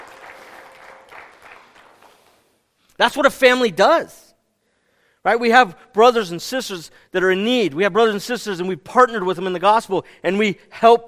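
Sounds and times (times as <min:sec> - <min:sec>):
crowd applauding: 0:00.0 - 0:02.6
speech: 0:03.0 - 0:04.2, 0:05.2 - 0:11.0.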